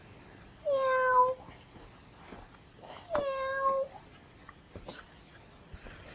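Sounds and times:
soft scattered noises: 0.0 - 6.1
cat meowing: 0.7 - 1.4, 3.2 - 3.9.

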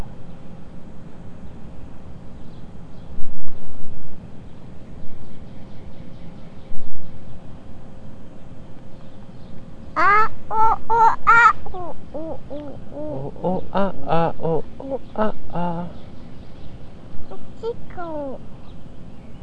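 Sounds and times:
steady outdoor noise: 0.0 - 19.4
flock of geese honking: 10.0 - 11.6.

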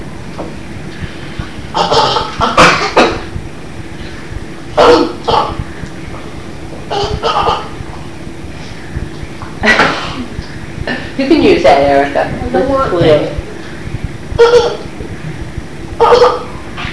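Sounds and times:
speech: 1.8 - 2.0, 11.8 - 13.4
child coughing and choking on food and milk: 1.8 - 3.3, 4.8 - 5.6, 6.9 - 7.8, 14.4 - 14.9, 16.0 - 16.5.

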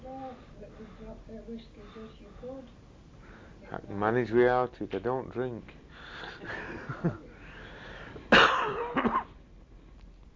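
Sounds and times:
speech: 1.0 - 2.9, 3.6 - 5.8, 6.4 - 7.2
person coughing with rough hacking coughs: 8.3 - 9.4.

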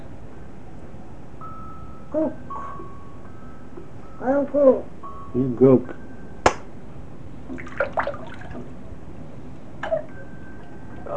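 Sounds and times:
speech: 2.1 - 2.6, 4.2 - 6.0
water splashing and sloshing in a bathtub: 7.5 - 8.7.

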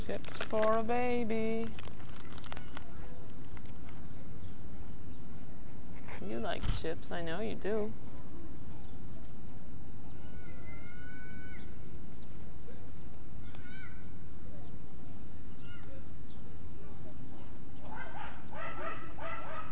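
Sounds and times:
speech: 0.1 - 1.8, 6.4 - 8.0
dogs barking and yelping in a scuffle: 17.4 - 19.7.

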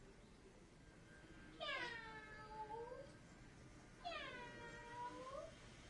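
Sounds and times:
drawn-out cat meow, likely a toy cat: 1.6 - 3.1, 4.0 - 5.5.

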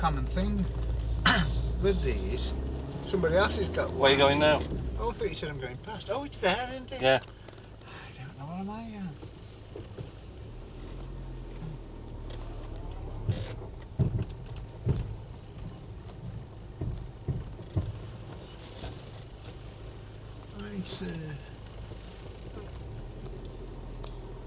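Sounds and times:
speech: 0.0 - 7.4, 8.4 - 10.2, 20.9 - 21.5
low engine rumble of a slowly reversing vehicle: 0.0 - 24.4
sharp knocks from underneath a slowly reversing vehicle: 13.2 - 19.1.

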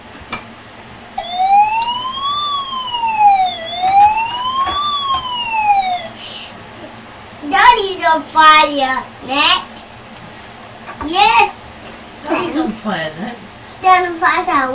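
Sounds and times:
wailing electronic siren activated by pressing a button: 1.2 - 6.4
speech: 8.1 - 9.7, 11.1 - 11.6, 12.4 - 14.7.

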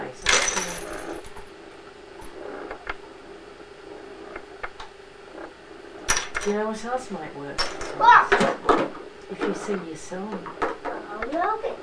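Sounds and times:
low steady hum: 0.0 - 11.8
coins dropping and clinking: 0.2 - 1.5, 6.1 - 6.5
speech: 6.4 - 10.6, 11.3 - 11.8.

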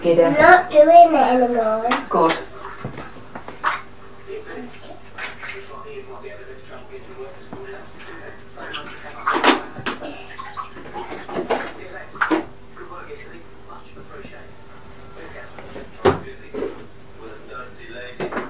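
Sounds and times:
speech: 0.0 - 2.4
bath water sloshing and splashing as a child is bathed: 1.9 - 5.8, 6.6 - 12.5.

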